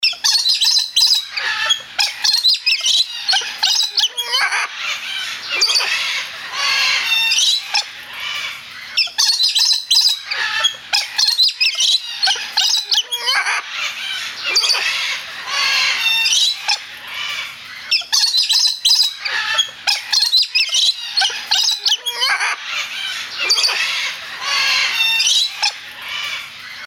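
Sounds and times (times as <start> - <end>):
Rose Breasted Cockatoo or Galah parrot calls: 0.0 - 26.8.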